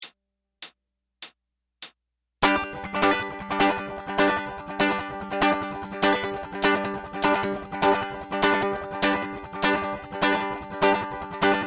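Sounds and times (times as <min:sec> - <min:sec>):
ukulele playing: 0:02.4 - 0:11.6.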